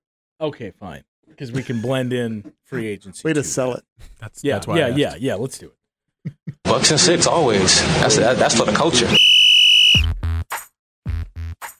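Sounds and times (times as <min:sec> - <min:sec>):
speech: 0:00.4 - 0:09.3
loud piercing whistle blast: 0:09.1 - 0:10.2.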